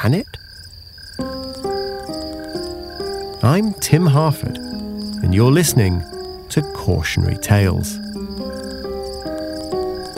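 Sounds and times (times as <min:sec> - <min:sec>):
speech: 0:00.0 - 0:00.4, 0:03.4 - 0:08.0
dense mass of crickets chirping in a high pulsing trill: 0:00.0 - 0:10.1
low sustained tones: 0:02.0 - 0:10.1.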